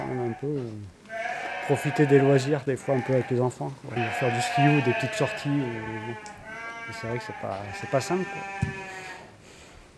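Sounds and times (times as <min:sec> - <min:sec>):
single sheep bleating: 0:00.0 - 0:00.5, 0:01.1 - 0:09.3
speech: 0:00.4 - 0:08.8.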